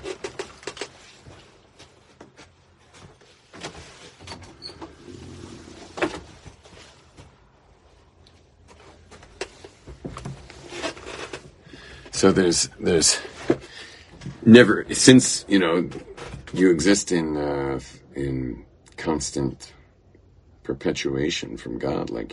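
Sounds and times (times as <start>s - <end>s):
door drawn-out sliding scrape: 3.6s - 6.5s
speech: 12.2s - 13.3s, 14.5s - 19.8s, 20.7s - 22.3s.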